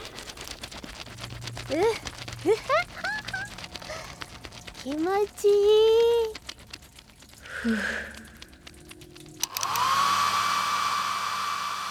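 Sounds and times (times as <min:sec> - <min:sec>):
rustling: 0:00.0 - 0:10.3
speech: 0:01.7 - 0:02.8, 0:04.8 - 0:06.4, 0:07.6 - 0:08.1
hair dryer switch click: 0:09.4 - 0:10.3
hair dryer whooshing roar with high motor whine: 0:09.4 - 0:11.8.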